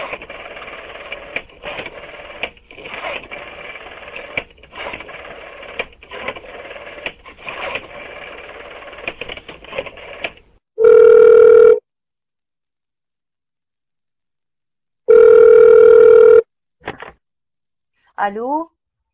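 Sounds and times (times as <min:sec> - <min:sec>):
soft clicking and handling noise: 0:00.0 - 0:10.5
telephone ringback tone during a call: 0:10.8 - 0:11.8, 0:15.1 - 0:16.4
speech: 0:18.2 - 0:18.7.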